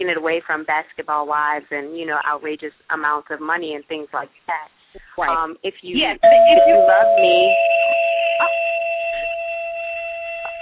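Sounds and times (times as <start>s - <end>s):
speech: 0.0s - 8.8s
odd electronic doorbell chime with high sustained tones: 6.2s - 10.5s.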